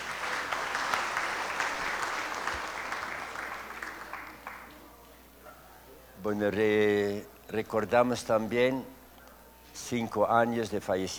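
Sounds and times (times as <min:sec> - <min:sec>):
audience applause: 0:00.0 - 0:04.7
speech: 0:06.2 - 0:09.0, 0:09.8 - 0:11.1.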